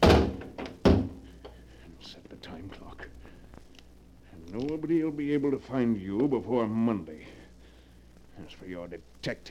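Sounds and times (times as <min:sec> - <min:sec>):
heavy vault door in an office swinging shut: 0:00.0 - 0:01.2
speech: 0:02.0 - 0:03.4, 0:04.4 - 0:07.4, 0:08.4 - 0:09.4.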